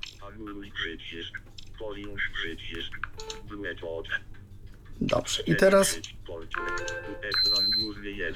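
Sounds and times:
speech: 0:00.3 - 0:04.4, 0:05.0 - 0:08.3
typing on a Bluetooth computer keyboard: 0:02.7 - 0:03.4.

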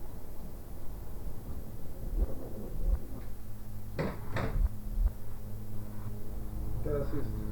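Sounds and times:
steady low room hum: 0:00.0 - 0:07.5
door swinging shut with firm thuds: 0:04.0 - 0:04.7
speech: 0:07.1 - 0:07.4.

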